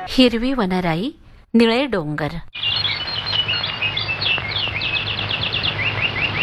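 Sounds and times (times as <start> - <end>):
speech: 0.1 - 2.6
birds chirping: 2.5 - 6.4.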